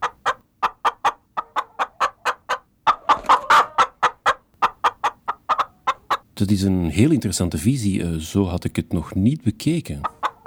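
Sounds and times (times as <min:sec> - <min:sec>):
hen clucking: 0:00.0 - 0:06.3, 0:08.8 - 0:10.4
speech: 0:06.4 - 0:10.1.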